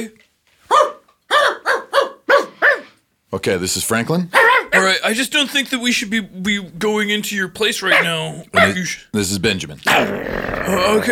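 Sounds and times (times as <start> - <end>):
speech: 0.0 - 0.9, 3.3 - 11.1
dogs barking: 0.7 - 3.0, 4.3 - 4.9, 7.9 - 8.9.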